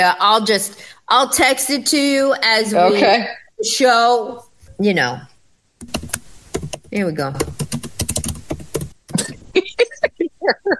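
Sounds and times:
speech: 0.0s - 6.2s, 6.9s - 7.6s
fast loud keyboard typing: 5.8s - 9.3s.

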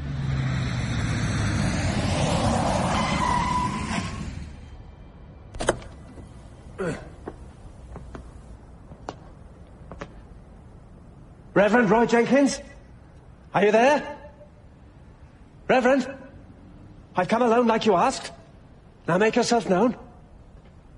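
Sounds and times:
car roaring and screeching through an underground car park: 0.0s - 5.0s
speech: 6.8s - 7.0s, 11.6s - 12.7s, 13.5s - 14.2s, 15.7s - 16.2s, 17.2s - 18.4s, 19.1s - 20.0s.

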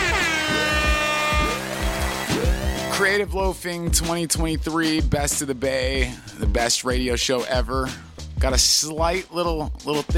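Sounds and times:
air horn sound effect blast: 0.0s - 3.0s
speech: 3.0s - 10.1s.

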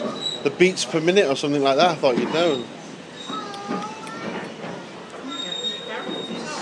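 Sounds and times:
train wheels squealing pulling into station: 0.0s - 0.5s, 5.2s - 6.6s
faint voices murmuring: 0.0s - 6.6s
speech: 0.4s - 2.8s
train rumbling: 1.7s - 6.6s.

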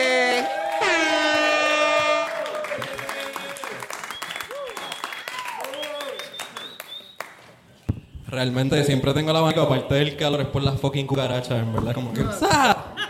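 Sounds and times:
room full of people applauding: 0.4s - 7.4s
speech: 8.3s - 12.9s.

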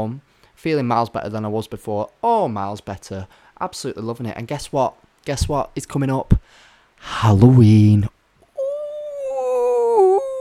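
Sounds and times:
speech: 0.0s - 8.2s
person's voice imitating a wolf howl: 8.6s - 10.3s.

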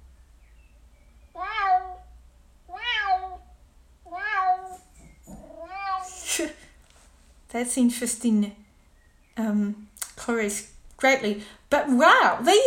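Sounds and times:
cat meowing played by a smart speaker: 1.3s - 2.1s, 2.7s - 3.5s, 4.1s - 6.3s
speech: 7.6s - 8.6s, 9.5s - 12.6s.

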